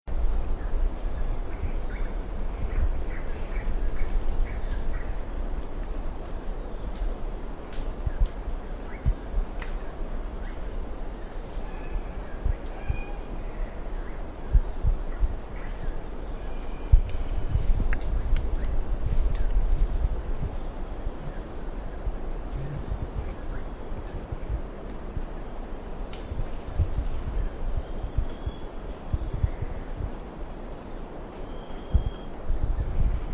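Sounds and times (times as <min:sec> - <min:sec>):
violet-headed hummingbird: 0:00.1 - 0:33.2.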